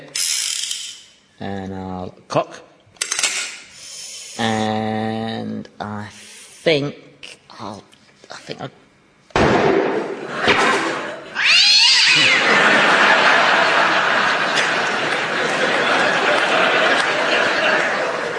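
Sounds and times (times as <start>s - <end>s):
speech: 1.4s - 2.7s, 4.4s - 7.0s, 7.6s - 7.9s, 8.5s - 8.8s
sharp bang: 9.4s - 11.1s
laughter: 10.0s - 11.4s, 12.0s - 18.3s
theatre cat yowling meow: 11.4s - 12.5s.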